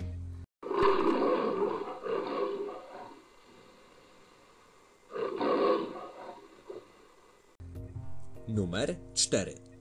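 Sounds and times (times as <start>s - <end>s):
lion roaring: 0.6s - 3.7s, 5.1s - 7.0s
speech: 8.6s - 9.7s.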